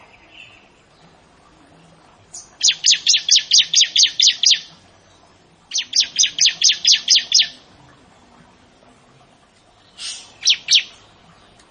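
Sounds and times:
Bar-winged prinia chirping: 0.0s - 1.2s, 2.3s - 7.6s, 9.6s - 11.7s.

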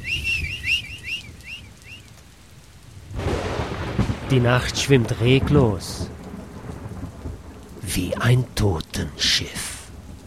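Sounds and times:
shrill whistle of a night watchman: 0.0s - 2.1s
speech: 4.3s - 6.1s, 7.9s - 9.6s.

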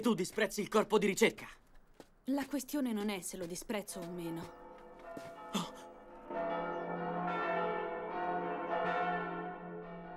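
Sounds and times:
speech: 0.0s - 1.6s, 2.3s - 4.6s
church bells ringing in a layered peal: 4.0s - 10.1s.

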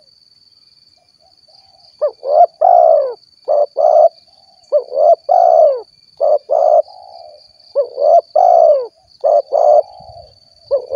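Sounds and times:
spotted dove cooing: 1.6s - 10.9s.

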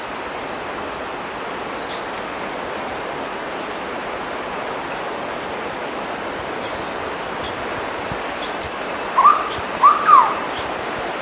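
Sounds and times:
steady background hiss: 0.0s - 11.1s
Hooded Berryeater Carpornis cucullata whistled calls: 8.4s - 10.7s.

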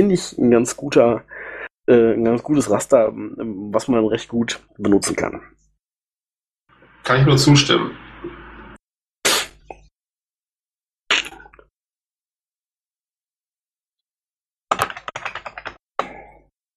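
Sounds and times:
speech: 0.0s - 1.3s, 1.9s - 5.6s, 7.1s - 8.4s
typing on a computer keyboard: 14.7s - 15.8s.

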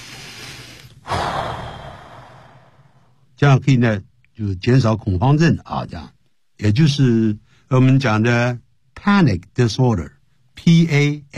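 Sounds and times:
deep controlled abdominal breath: 0.0s - 3.3s
speech: 3.4s - 11.3s.

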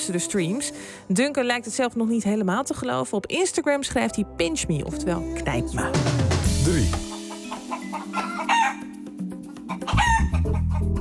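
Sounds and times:
speech: 0.0s - 7.1s
roosters crowing in a city park: 7.0s - 9.0s, 9.7s - 10.8s
chickens clucking in a city park: 7.0s - 11.0s.

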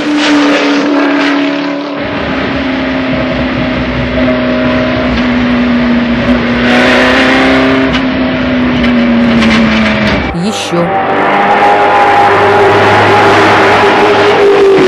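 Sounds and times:
engine drone of a car speeding around a bend on a track: 0.0s - 14.8s.

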